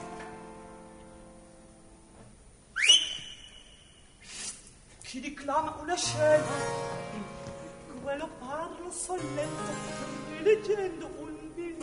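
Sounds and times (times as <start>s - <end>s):
sharp whistle: 2.7s - 4.5s
speech: 5.1s - 7.2s, 8.1s - 11.2s.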